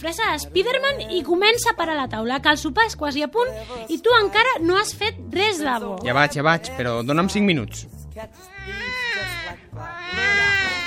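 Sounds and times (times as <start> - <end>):
speech: 0.0 - 8.8
baby wailing: 8.5 - 10.8.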